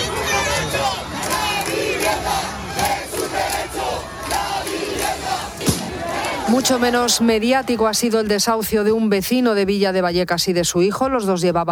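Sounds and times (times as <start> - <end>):
large street protest crowd shouting chants: 0.0 - 8.3
speech: 6.5 - 11.7.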